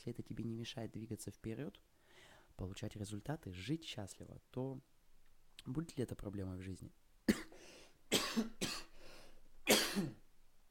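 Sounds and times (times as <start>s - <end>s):
speech: 0.0s - 2.0s, 2.6s - 4.9s, 5.6s - 7.8s, 8.4s - 8.6s, 10.0s - 10.2s
man coughing in a strong coughing fit: 7.3s - 8.9s, 9.7s - 10.2s.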